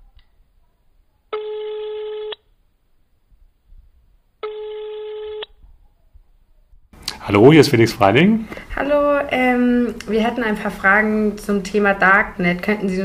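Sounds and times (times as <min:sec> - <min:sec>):
buzzy ringback tone of an outgoing telephone call: 0:01.3 - 0:02.4, 0:04.4 - 0:05.6
speech: 0:07.3 - 0:13.0.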